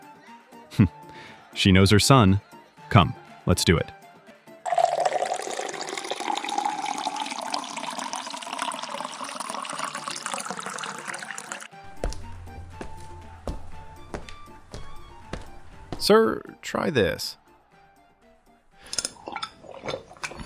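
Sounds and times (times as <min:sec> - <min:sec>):
speech: 0:00.8 - 0:01.0, 0:01.6 - 0:04.0, 0:16.1 - 0:17.4
water pouring into a large vessel: 0:04.7 - 0:11.7, 0:18.9 - 0:20.4.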